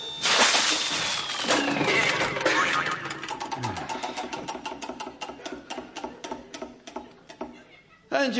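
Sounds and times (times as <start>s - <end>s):
smoking category wheel spinning too fast, whirring and clicking: 1.1s - 7.5s
laughter: 7.1s - 8.1s.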